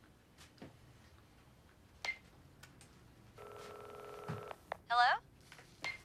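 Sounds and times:
mobile phone electronic ringing tone: 3.4s - 4.6s.

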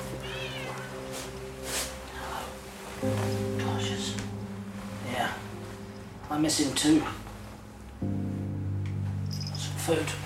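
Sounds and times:
brief rustling bursts: 0.0s - 10.2s
short-haired black cat meowing: 0.1s - 1.1s
steady low electrical hum: 0.8s - 10.2s
speech: 3.0s - 3.4s, 6.4s - 7.2s, 9.9s - 10.2s.

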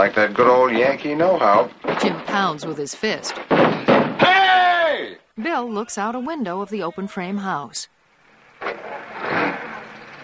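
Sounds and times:
speech: 0.0s - 4.3s, 5.4s - 8.0s
car driving away from a frame house under construction: 8.6s - 10.2s.

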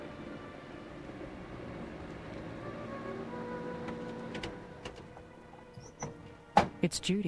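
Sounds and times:
car engine rumbling while pulling up and stopping: 0.0s - 7.1s
sharp clicks and squeaks: 5.7s - 6.2s
speech: 6.8s - 7.2s.

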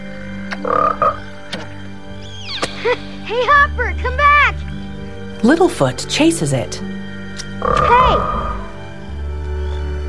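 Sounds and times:
frog croaking: 0.1s - 1.5s, 7.5s - 8.8s
speech: 0.6s - 1.2s, 2.8s - 4.2s, 5.4s - 7.0s, 7.6s - 8.4s.

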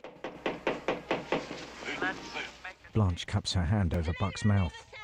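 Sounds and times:
police officer knocking on a chalet door: 0.0s - 1.7s
speech: 2.1s - 4.9s.

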